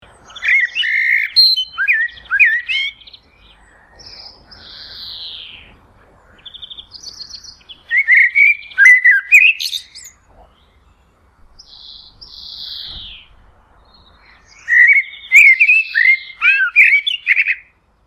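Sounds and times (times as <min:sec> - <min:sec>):
common blackbird singing: 0:00.0 - 0:17.9.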